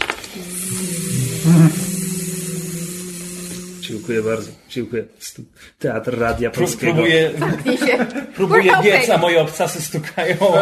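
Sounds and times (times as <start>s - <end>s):
voice humming a droning buzz imitating an insect or engine: 0.3s - 4.7s
speech: 1.4s - 1.9s, 4.0s - 10.5s
laughter: 6.6s - 10.5s.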